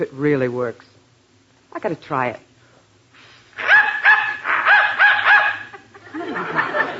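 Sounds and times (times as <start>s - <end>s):
speech: 0.0s - 1.0s, 1.8s - 2.5s
dog barking excitedly after a dog whistle: 3.6s - 5.8s
laughter: 4.5s - 6.9s.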